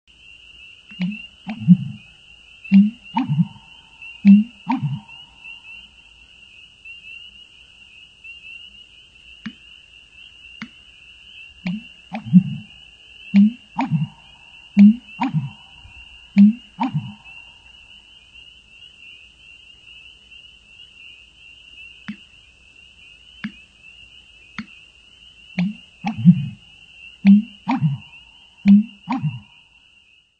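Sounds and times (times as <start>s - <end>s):
American Bittern calling: 0.8s - 6.0s, 11.5s - 18.1s, 25.6s - 29.6s.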